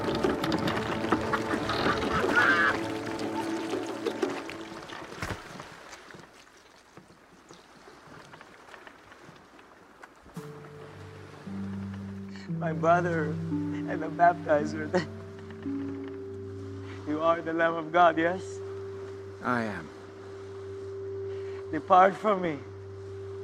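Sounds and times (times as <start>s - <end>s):
loud groaning creaking of a sinking boat: 0.0s - 4.8s, 10.4s - 20.2s
water sloshing and churning around a sinking boat: 0.0s - 23.4s
speech: 12.7s - 15.1s, 17.3s - 18.6s, 19.4s - 20.0s, 21.7s - 22.7s.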